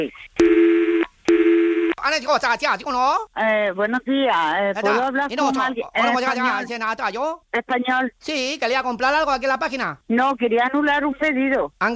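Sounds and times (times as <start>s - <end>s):
speech: 0.0s - 0.5s, 2.0s - 11.9s
telephone ringing tones of a call being transferred: 0.4s - 2.0s.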